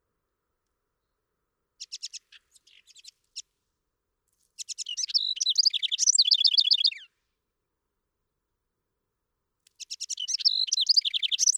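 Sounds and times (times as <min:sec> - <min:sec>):
House wren song: 0:01.8 - 0:03.5, 0:04.6 - 0:07.1, 0:09.8 - 0:11.5.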